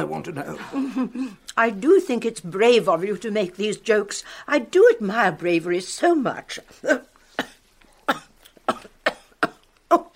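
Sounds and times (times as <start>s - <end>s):
speech: 0.0s - 7.5s
person coughing while choking on a fish bone: 6.9s - 10.1s.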